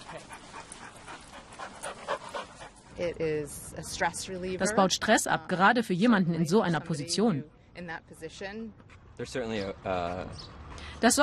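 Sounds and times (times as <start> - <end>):
dog panting: 0.0 - 4.6, 8.7 - 11.2
speech: 3.0 - 11.2.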